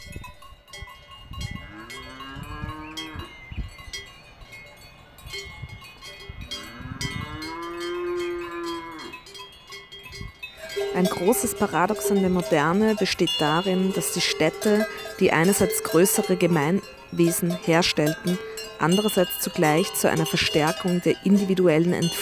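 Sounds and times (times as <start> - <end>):
cowbells clanging on a herd of cattle near a terrace: 0.0 - 22.2
cattle mooing: 1.6 - 3.3, 6.5 - 9.2, 10.7 - 22.2
speech: 11.0 - 22.2.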